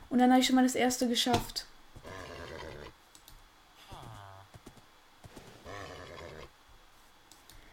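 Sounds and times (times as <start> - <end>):
speech: 0.1 - 1.7
horse neighing: 2.0 - 3.0, 3.8 - 4.5, 5.5 - 6.5.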